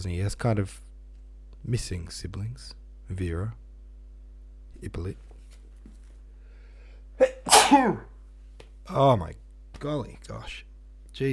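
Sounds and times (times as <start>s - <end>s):
speech: 0.0s - 0.9s, 1.6s - 3.6s, 4.8s - 5.3s, 7.7s - 8.1s, 8.8s - 11.3s
person with hay fever and a chest infection sneezing: 7.2s - 8.1s.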